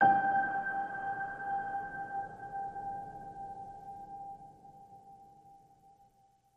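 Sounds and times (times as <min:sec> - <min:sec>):
piano ping on G: 0:00.0 - 0:04.7.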